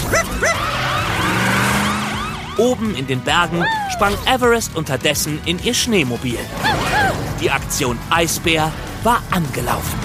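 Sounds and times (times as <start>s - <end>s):
police car siren in a children's animated story: 0.0s - 4.2s
speech: 2.6s - 10.0s.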